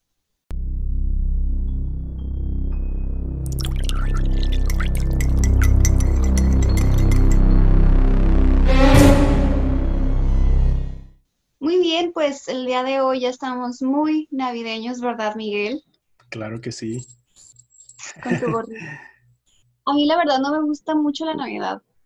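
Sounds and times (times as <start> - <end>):
steady low droning tone: 0.5 - 11.1
bright glass clinks: 3.5 - 7.4
drink pouring into a glass: 3.5 - 7.4
speech: 12.2 - 17.2, 18.1 - 19.1, 19.9 - 21.9
laughter: 18.0 - 19.0.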